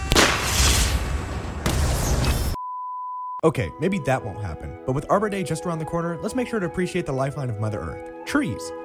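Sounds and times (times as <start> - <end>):
cannon blast: 0.1 - 2.4
speech: 3.4 - 8.8.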